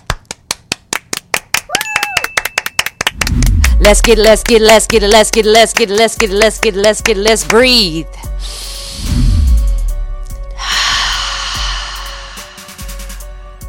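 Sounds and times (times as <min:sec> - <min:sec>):
hands clapping: 0:00.0 - 0:07.6
speech: 0:03.8 - 0:09.1
low droning tone: 0:10.6 - 0:13.3
person singing: 0:10.6 - 0:13.3.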